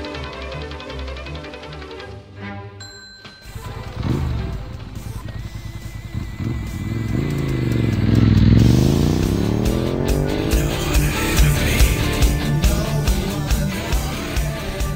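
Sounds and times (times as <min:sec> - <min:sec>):
motorcycle engine revving and idling roughly with throttle blips: 0:03.5 - 0:14.9.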